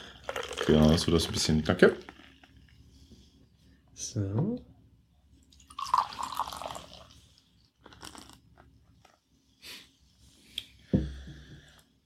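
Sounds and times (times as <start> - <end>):
beer poured into a glass: 0.0 - 2.5, 5.5 - 7.4
speech: 0.7 - 2.1, 4.2 - 4.7
soft knock: 10.9 - 11.4.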